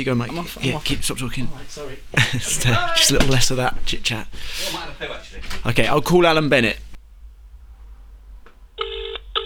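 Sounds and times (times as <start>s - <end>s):
speech: 0.0s - 6.8s
laughter: 1.9s - 3.2s
phone line ringing back in the earpiece on an outgoing call: 8.8s - 9.4s.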